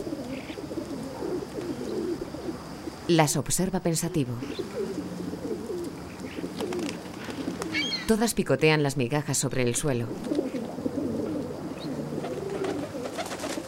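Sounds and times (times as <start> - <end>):
pigeons cooing on a rooftop: 0.0 - 3.1, 4.0 - 8.1, 10.1 - 13.6
speech: 3.1 - 5.0, 8.1 - 10.4
pigeon wings flapping: 6.5 - 7.8, 12.2 - 13.6.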